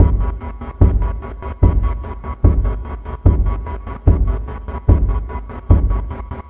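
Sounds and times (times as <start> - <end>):
hard chase music: 0.0 - 6.4.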